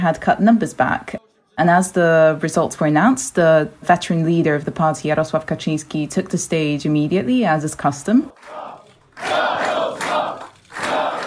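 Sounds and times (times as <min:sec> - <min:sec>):
speech: 0:00.0 - 0:10.0
large crowd chanting a slogan at an election-results event: 0:08.2 - 0:11.2.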